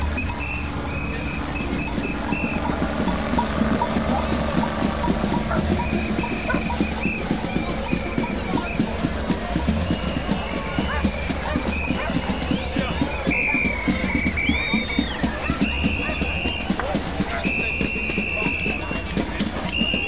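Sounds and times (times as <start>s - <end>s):
faint voices murmuring: 0.0s - 20.0s
high whistling tones: 0.0s - 20.0s
small cart driven up onto a bridge with clattering rumble: 0.0s - 20.0s.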